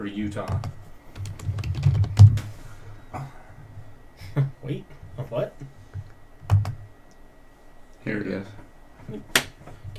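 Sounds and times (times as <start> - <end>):
speech: 0.0 - 0.8, 3.1 - 3.4, 4.4 - 5.8, 8.0 - 9.4
typing on a computer keyboard: 0.4 - 2.4, 6.5 - 6.8.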